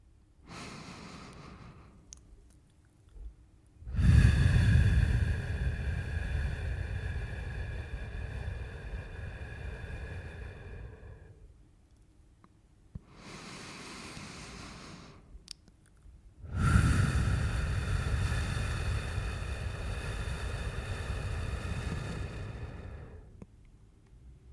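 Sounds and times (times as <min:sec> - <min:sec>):
slow breathing exercise, inhaling and exhaling: 0:00.0 - 0:02.2, 0:03.8 - 0:11.6, 0:13.0 - 0:15.4, 0:16.4 - 0:23.4.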